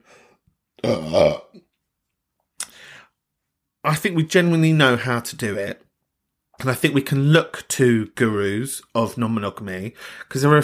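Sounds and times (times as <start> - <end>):
speech: 0.8 - 1.5, 3.8 - 5.8, 6.6 - 10.6
person burping: 0.8 - 1.7.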